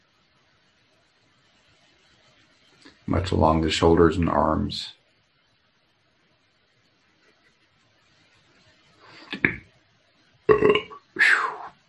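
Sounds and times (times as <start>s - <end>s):
speech: 3.1s - 5.0s
person belching: 9.3s - 9.6s, 10.5s - 11.7s.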